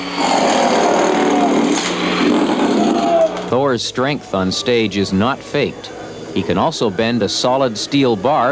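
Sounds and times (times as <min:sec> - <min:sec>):
pneumatic drill running: 0:00.0 - 0:03.5
speech: 0:03.5 - 0:08.4.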